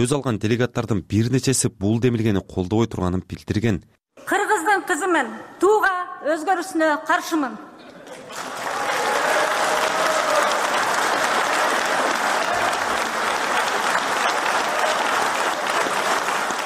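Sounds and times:
speech: 0.0s - 8.6s
people's assembly delegates applauding in support: 8.0s - 16.6s.

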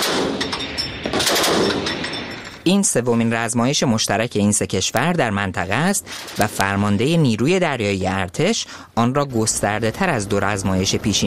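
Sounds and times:
rapid gunfire at a firing range during a joint military exercise: 0.0s - 2.0s
speech: 2.6s - 11.2s.

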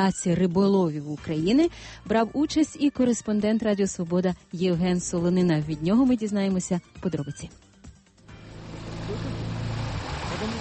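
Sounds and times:
speech: 0.0s - 7.6s
distant motorboat engine rumbling on water: 8.3s - 10.6s.

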